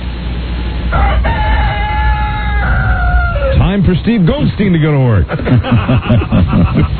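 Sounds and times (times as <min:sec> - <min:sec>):
low rumbling farmyard background: 0:00.0 - 0:06.9
rooster crowing: 0:00.9 - 0:03.8
speech: 0:03.9 - 0:06.9
laughter: 0:05.1 - 0:06.9.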